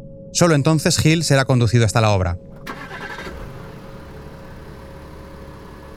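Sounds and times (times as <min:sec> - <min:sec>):
speech: 0:00.3 - 0:03.0
car engine cranking and catching then idling: 0:02.3 - 0:05.9.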